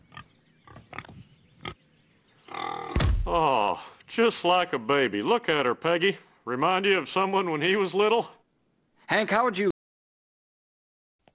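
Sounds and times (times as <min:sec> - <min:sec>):
female pig grunting: 0:02.5 - 0:03.0
speech: 0:03.3 - 0:08.4, 0:09.1 - 0:09.7.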